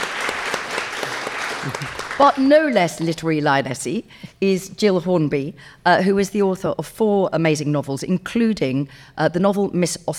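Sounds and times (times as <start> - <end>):
crowd applause: 0.0 - 3.2
speech: 1.6 - 10.1.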